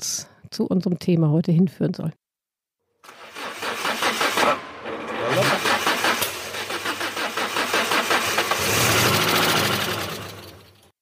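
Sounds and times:
speech: 0.6 - 2.2
car starter cranking a combustion engine that fails to start: 3.0 - 10.8.

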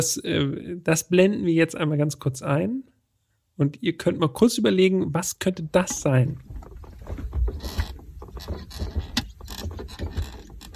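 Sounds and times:
speech: 0.0 - 2.9, 3.6 - 7.8
spring-core car seats creaking and squeaking: 5.8 - 10.7.

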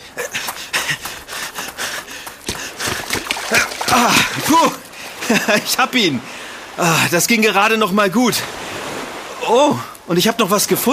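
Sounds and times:
quick panting and gasping breaths: 0.0 - 5.2
speech: 0.2 - 1.0, 3.5 - 8.6, 9.5 - 10.9
water splashing as a ball rolls into the water: 1.0 - 10.0
laughter: 3.5 - 5.8.

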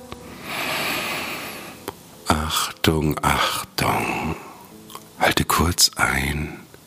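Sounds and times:
slow deep breath during a guided meditation: 0.3 - 1.8
speech: 2.5 - 4.4, 5.3 - 6.7.

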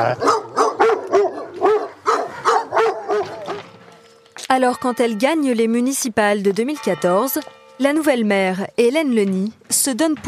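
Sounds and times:
speech: 0.0 - 0.4, 4.5 - 10.2
dogs barking: 0.0 - 3.8.

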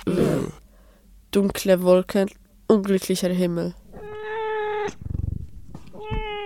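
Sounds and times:
low rhythmic rumble like a purr or growl: 0.0 - 6.4
speech: 1.3 - 3.8
stray cat meowing: 3.9 - 5.2, 5.8 - 6.4.

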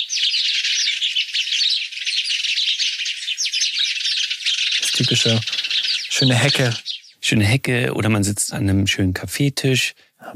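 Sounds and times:
house sparrow chirping: 0.0 - 8.2
speech: 5.0 - 5.6, 6.2 - 10.3.

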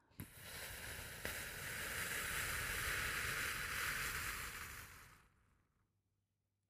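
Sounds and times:
slow steady breath exhaled through the mouth: 0.1 - 5.4.

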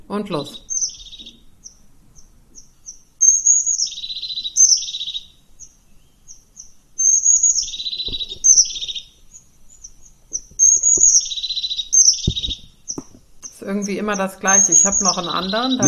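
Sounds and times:
crested tit calls with thin high notes and buzzy rolling trills: 0.0 - 15.8
speech: 0.1 - 0.7, 13.7 - 15.8
soft low knocks: 7.8 - 9.0, 9.7 - 11.4, 12.0 - 13.3.

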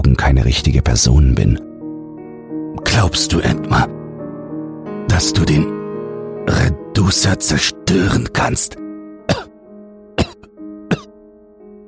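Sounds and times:
speech: 0.0 - 1.7, 3.0 - 4.0, 5.1 - 5.8, 6.4 - 8.8
man coughing: 9.3 - 9.6, 10.2 - 11.1.

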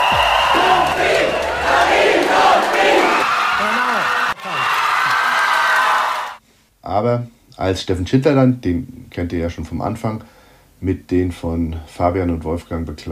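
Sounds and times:
fans from the wine-growing regions cheering loudly at a German wine queen election: 0.0 - 6.4
speech: 7.0 - 13.1.

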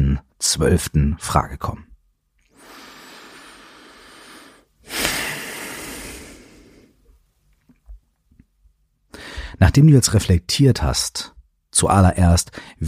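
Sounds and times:
speech: 0.4 - 1.9, 9.6 - 12.8
deep breath in and out during a guided reflection exercise: 2.5 - 7.1, 9.1 - 9.6.

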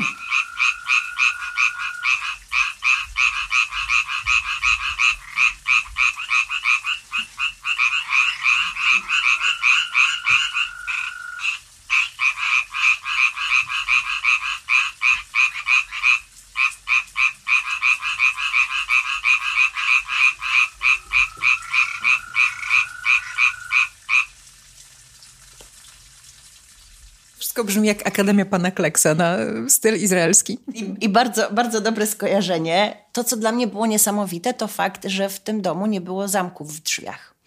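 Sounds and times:
chorus of frogs croaking in a pond: 0.0 - 24.4
speech: 27.6 - 37.3.

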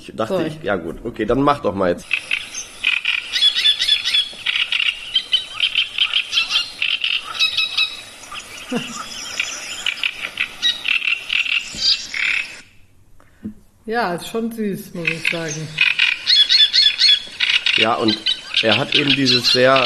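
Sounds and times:
speech: 0.0 - 2.3, 13.9 - 15.8, 17.8 - 19.8
person imitating great reed warbler song: 3.3 - 11.7, 15.0 - 19.8.

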